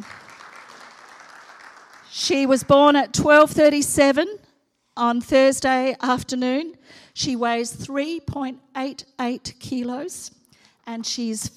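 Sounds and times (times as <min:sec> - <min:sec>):
crowd applauding: 0:00.0 - 0:02.5
speech: 0:02.1 - 0:04.4, 0:05.0 - 0:11.5.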